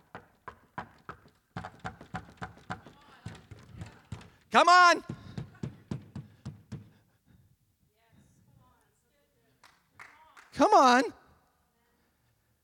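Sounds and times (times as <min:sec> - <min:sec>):
knuckles knocking on a hard surface: 0:00.0 - 0:04.4, 0:05.1 - 0:07.0
speech: 0:04.5 - 0:05.1, 0:10.6 - 0:11.2.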